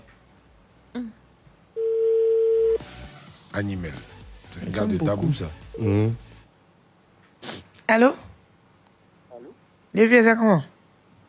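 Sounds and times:
speech: 1.0s - 1.2s, 3.6s - 6.3s, 7.9s - 8.3s, 10.0s - 10.7s
telephone dial tone as call connects: 1.8s - 2.8s.

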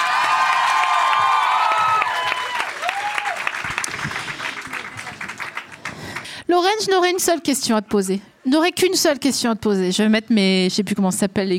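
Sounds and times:
large audience cheering with high whoops: 0.0s - 4.1s
large audience applauding: 0.0s - 6.3s
speech: 6.6s - 11.5s.

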